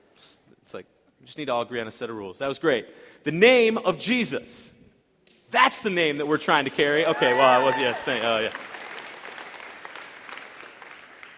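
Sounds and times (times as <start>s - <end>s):
speech: 0.7s - 4.8s, 5.5s - 8.7s
crowd clapping: 5.8s - 11.3s.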